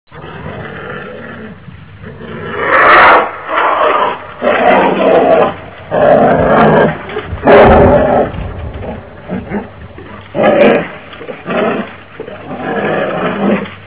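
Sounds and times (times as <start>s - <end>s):
bear: 0.1s - 13.9s.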